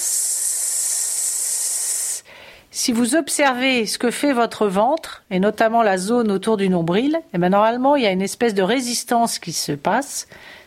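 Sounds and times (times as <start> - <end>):
hiss of air exhaled through pursed lips in a breathing exercise: 0.0 - 2.4
speech: 2.3 - 10.6.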